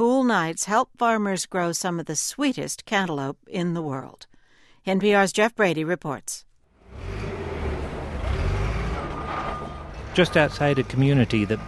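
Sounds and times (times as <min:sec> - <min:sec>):
speech: 0:00.0 - 0:07.1, 0:10.2 - 0:11.6
car and RV engines idling in a busy parking lot: 0:06.8 - 0:11.6.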